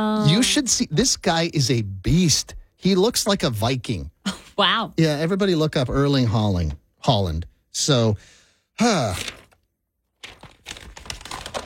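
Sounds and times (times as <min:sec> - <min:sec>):
speech: 0:00.0 - 0:09.4
sheet of paper being crumpled and ripped: 0:08.9 - 0:09.6, 0:10.2 - 0:11.6.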